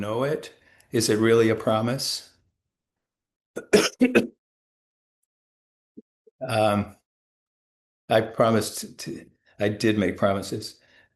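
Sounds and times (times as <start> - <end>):
speech: 0.0 - 2.3, 3.6 - 4.4, 6.4 - 7.0, 8.1 - 10.8
person recovering from COVID coughing sharply: 3.6 - 4.3
rough drawn-out throat clearing: 3.6 - 4.3.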